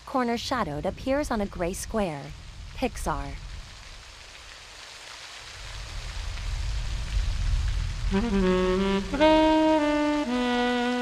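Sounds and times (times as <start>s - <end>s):
rain pouring onto a city street: 0.0s - 11.0s
speech: 0.1s - 3.5s, 8.1s - 9.9s
sustained musical tones: 8.1s - 11.0s.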